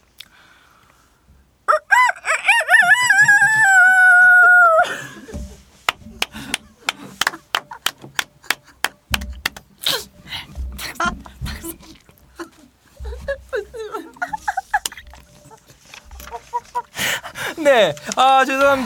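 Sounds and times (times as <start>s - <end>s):
person doing a rooster crow impression: 1.7s - 5.0s
laughter: 4.0s - 18.8s
sharp taps: 5.3s - 12.3s
speech: 17.8s - 18.8s.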